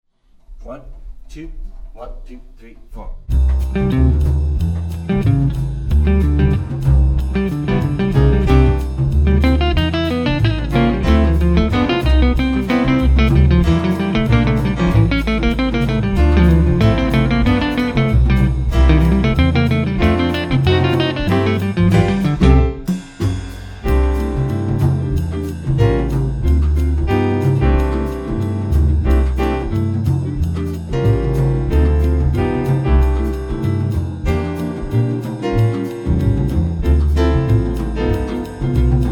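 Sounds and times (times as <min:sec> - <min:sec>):
latin rhythm section: 0:01.2 - 0:39.0
guitar solo: 0:05.1 - 0:22.9.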